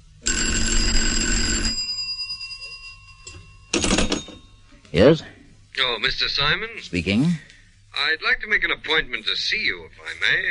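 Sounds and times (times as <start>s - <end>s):
old-fashioned telephone bell ringing: 0.2s - 4.7s
speech: 4.9s - 10.4s.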